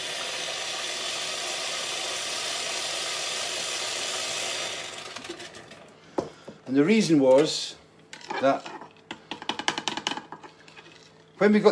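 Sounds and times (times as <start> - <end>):
boiling water pouring from a boiling-water tap: 0.0 - 5.7
speech: 6.7 - 7.8, 8.4 - 8.8, 11.4 - 11.7.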